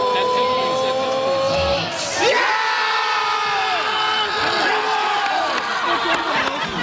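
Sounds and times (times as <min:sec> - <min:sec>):
large crowd cheering at a penalty goal: 0:00.0 - 0:06.8
laughter: 0:05.5 - 0:06.8.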